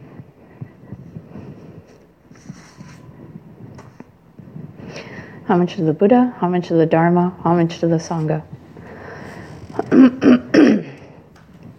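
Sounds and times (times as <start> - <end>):
speech: 5.5 - 8.5
person clearing throat: 9.8 - 11.1
person recovering from a cough coughing: 9.8 - 11.2.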